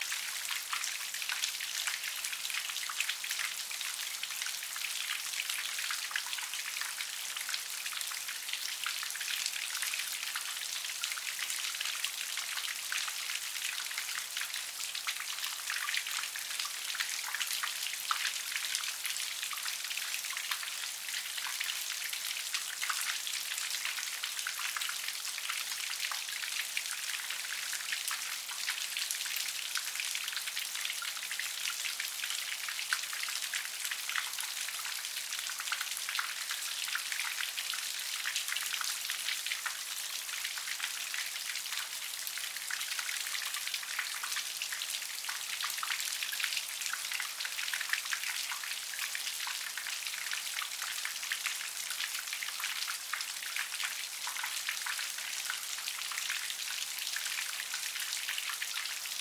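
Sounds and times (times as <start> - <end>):
pleasant rain: 0.0 - 59.1.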